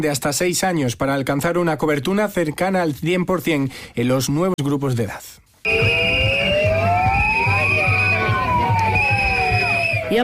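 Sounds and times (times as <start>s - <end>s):
speech: 0.0s - 5.4s
steady rhythmic low pulses: 5.7s - 10.1s
sirens wailing at a midday protest by striking doctors in Córdoba: 5.7s - 10.2s.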